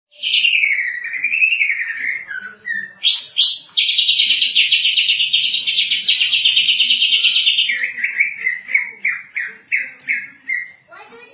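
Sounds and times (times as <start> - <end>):
Greater green leafbird whistled phrases: 0.1 - 11.3.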